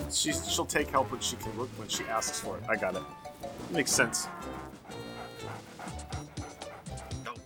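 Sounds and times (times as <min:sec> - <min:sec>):
speech: 0:00.1 - 0:04.5
dog barking and yipping: 0:03.6 - 0:07.3.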